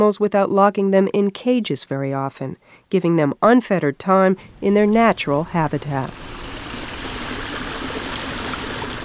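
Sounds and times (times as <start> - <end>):
speech: 0.0 - 6.3
flowing river water rushing: 5.4 - 9.0.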